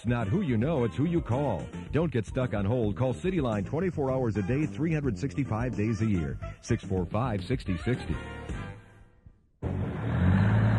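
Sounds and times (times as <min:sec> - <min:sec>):
speech: 0:00.0 - 0:08.5
Army Reserve supply truck engine rumbling while driving: 0:09.6 - 0:10.7.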